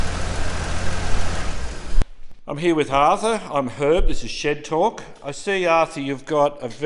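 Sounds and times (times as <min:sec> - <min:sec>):
black classic car engine with single Strongberg carburetor idling: 0:00.0 - 0:02.0
speech: 0:02.5 - 0:06.8.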